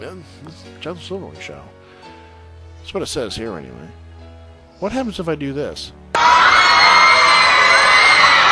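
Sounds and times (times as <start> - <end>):
speech: 0.0 - 1.8, 2.8 - 4.0, 4.8 - 6.4
loud screaming crowd: 6.2 - 8.4.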